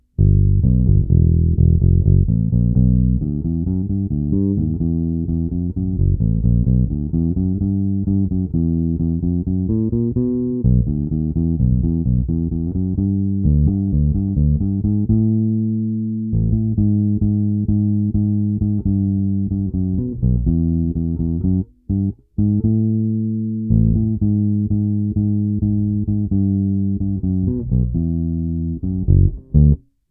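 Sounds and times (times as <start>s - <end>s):
Jay Turser Precision bass guitar with La Bella strings: 0.0s - 30.0s.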